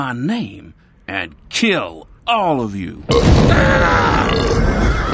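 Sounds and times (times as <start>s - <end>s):
speech: 0.0s - 4.7s
loud rumbling burp after eating a steak: 3.1s - 5.0s.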